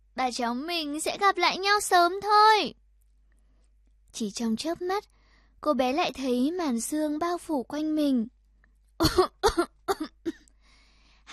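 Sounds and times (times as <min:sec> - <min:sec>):
speech: 0:00.2 - 0:02.8, 0:04.1 - 0:08.4, 0:09.0 - 0:10.2
old man coughing violently after jolting up from bed: 0:09.0 - 0:10.5.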